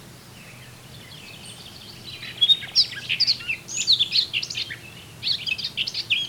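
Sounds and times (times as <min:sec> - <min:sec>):
Eurasian blackcap warbling song: 0:00.0 - 0:06.2.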